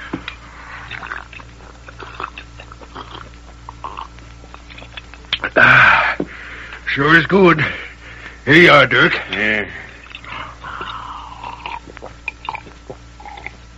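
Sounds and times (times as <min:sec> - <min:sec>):
low hum: 0:00.0 - 0:13.7
person gulping water from a canteen: 0:00.8 - 0:05.9, 0:10.0 - 0:13.7
speech: 0:07.0 - 0:07.8, 0:08.5 - 0:09.8.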